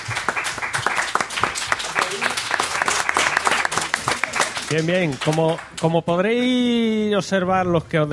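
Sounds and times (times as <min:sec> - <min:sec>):
audience applause from a crowd of about 700 people at a live event: 0:00.0 - 0:05.9
speech: 0:04.7 - 0:08.1.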